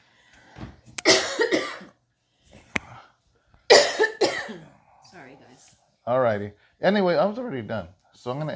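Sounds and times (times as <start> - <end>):
harsh raspy coughing: 1.0 - 2.0, 3.7 - 4.8
speech: 5.6 - 8.5.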